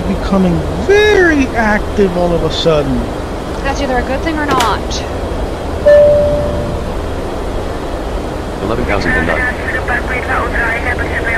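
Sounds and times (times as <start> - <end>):
airplane taking off with continuous broad engine roar: 0.0 - 11.3
speech: 0.1 - 5.1, 8.6 - 11.3
high whistling tone: 5.9 - 6.9.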